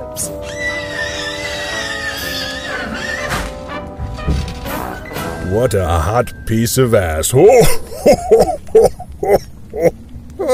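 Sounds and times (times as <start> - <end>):
speech: 0.2 - 0.5, 5.5 - 8.9
horses neighing and whinnying: 0.2 - 3.7.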